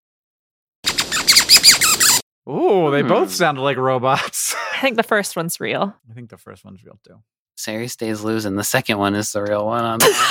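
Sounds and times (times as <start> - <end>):
zebra finch rapid nasal squeaky chirps: 0.9 - 2.2
speech: 2.5 - 10.2
laughter: 10.0 - 10.2.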